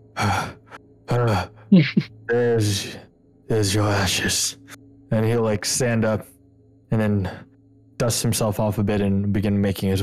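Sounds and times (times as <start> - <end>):
heavy breathing: 0.2 - 0.8
speech: 0.2 - 6.3, 6.9 - 10.0.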